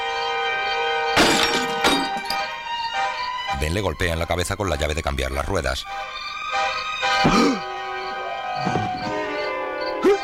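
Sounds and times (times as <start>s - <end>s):
steady tonal background: 0.0s - 10.2s
pickup truck headlight glass being smashed: 1.2s - 2.5s
speech: 3.6s - 6.2s.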